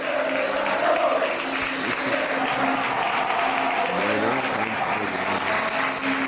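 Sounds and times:
crowd of football supporters applauding at end of play-off match: 0.0s - 6.2s
laughter: 0.0s - 6.2s.

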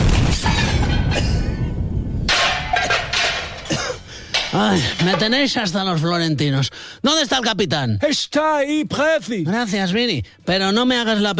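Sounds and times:
grenade explosion: 0.0s - 3.2s
sharp crashing bursts: 0.0s - 5.4s
speech: 4.6s - 11.3s.

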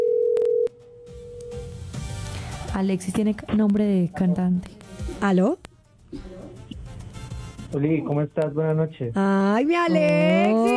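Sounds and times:
telephone dial tone on an outgoing call: 0.0s - 0.7s
speech: 2.8s - 6.4s, 7.7s - 10.7s.

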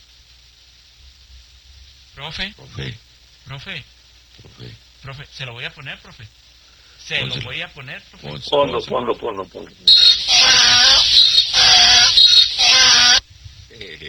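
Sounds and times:
speech: 2.2s - 6.4s, 7.0s - 10.0s
donkey braying with wheezy rasping notes and harsh honking blasts: 8.4s - 13.2s.

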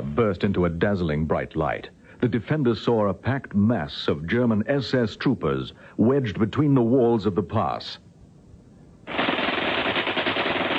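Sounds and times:
speech: 0.2s - 8.0s
rifle and machine gun fire: 9.1s - 10.7s.

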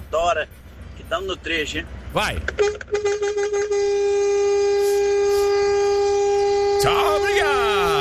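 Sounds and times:
speech: 0.2s - 5.0s, 6.8s - 8.0s
truck air horn blasts: 2.5s - 8.0s.

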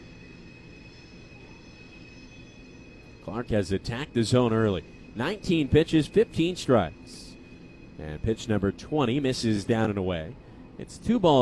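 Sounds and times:
train wheels squealing past a ballpark: 0.0s - 11.3s
speech: 3.3s - 7.2s, 8.0s - 11.3s.

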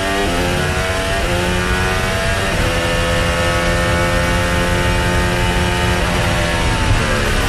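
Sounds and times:
racing car engine revving and breaking down: 0.0s - 7.4s.

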